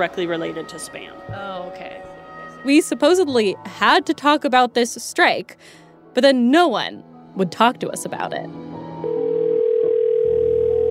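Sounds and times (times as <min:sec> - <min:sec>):
speech: 0:00.0 - 0:08.6
musical bed: 0:00.0 - 0:09.7
telephone dial tone: 0:09.1 - 0:10.9.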